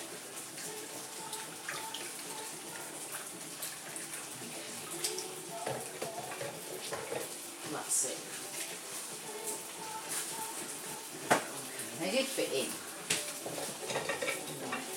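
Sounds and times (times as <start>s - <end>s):
tap water running: 0.0s - 14.9s
speech: 12.1s - 12.9s.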